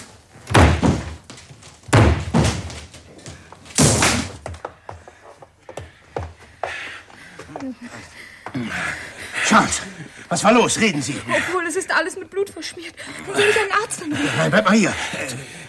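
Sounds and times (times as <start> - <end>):
knocks and rattling of a door giving way: 0.4 - 4.9
heavy slams of someone throwing their weight against a door: 0.5 - 1.2, 1.9 - 2.8
speech: 7.6 - 15.6.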